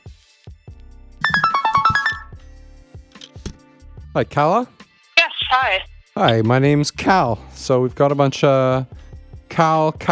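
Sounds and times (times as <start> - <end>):
phone ringtone descending electronic melody: 1.2 - 2.4
short regular tonal beats: 1.2 - 2.4
speech: 4.2 - 4.8, 5.5 - 9.0, 9.6 - 10.0.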